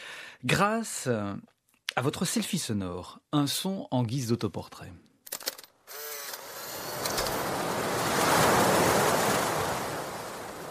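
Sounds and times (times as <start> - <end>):
speech: 0.4 - 5.1
sea waves: 6.4 - 10.6.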